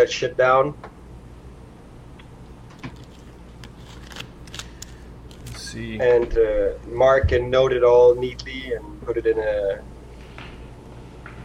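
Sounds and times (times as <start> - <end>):
speech: 0.0 - 1.0, 5.7 - 9.9
low steady hum: 0.0 - 11.4
sheets of paper gathered and shuffled: 2.8 - 5.6.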